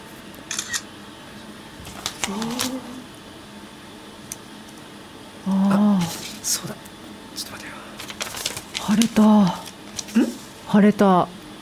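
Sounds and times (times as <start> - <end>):
camera shutter clicking as a photo is taken: 0.5 - 0.8
speech: 2.3 - 2.6, 6.5 - 6.9, 8.9 - 9.6, 10.2 - 11.4.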